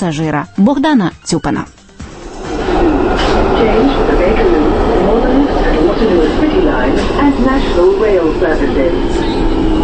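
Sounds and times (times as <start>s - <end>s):
speech: 0.0s - 1.8s, 3.4s - 9.3s
London Underground train running underground: 2.0s - 9.8s.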